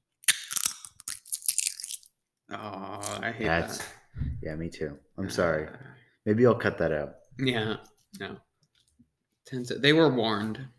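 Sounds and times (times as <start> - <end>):
crunchy snack crushed between fingers: 0.2 - 2.1
speech: 2.5 - 8.5, 9.5 - 10.7.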